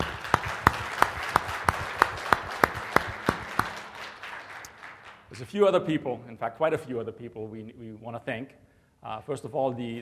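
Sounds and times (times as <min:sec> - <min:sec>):
audience applauding: 0:00.0 - 0:05.4
pair of hands clapping in a steady even rhythm: 0:00.0 - 0:05.4
speech: 0:05.4 - 0:09.9.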